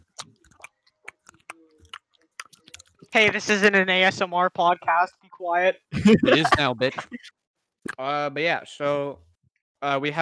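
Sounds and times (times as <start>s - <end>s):
loud wet chewing of gum: 0.0s - 3.1s
speech: 3.1s - 10.2s
laughter: 5.9s - 7.3s.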